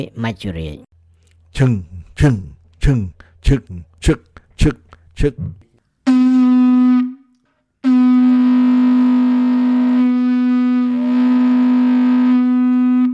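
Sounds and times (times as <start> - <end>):
speech: 0.0 - 0.9, 1.5 - 5.6
ship's whistle blowing in the night: 6.1 - 13.1.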